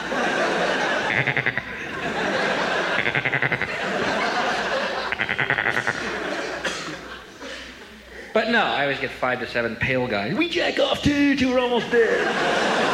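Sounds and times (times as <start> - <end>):
laughter: 0.0 - 8.3, 11.8 - 12.9
steady hiss: 0.3 - 11.5
goat bleating: 1.1 - 1.8, 3.0 - 3.7, 5.1 - 6.0
speech: 1.2 - 1.8, 8.5 - 12.7.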